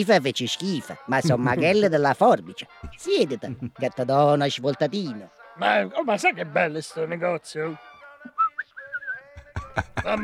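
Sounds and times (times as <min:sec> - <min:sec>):
speech: 0:00.0 - 0:07.9, 0:09.8 - 0:10.2
laughter: 0:01.2 - 0:01.9, 0:02.8 - 0:03.9, 0:09.4 - 0:10.2
person whistling a short wavering melody: 0:08.2 - 0:09.6.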